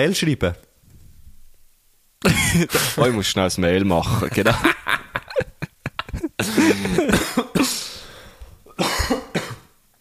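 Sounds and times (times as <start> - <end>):
speech: 0.0 - 0.6, 2.2 - 4.8
deliberate coughs as a signal: 2.2 - 3.2, 6.0 - 9.8
laughter: 4.2 - 7.2
throat clearing: 6.4 - 7.8, 8.7 - 9.7.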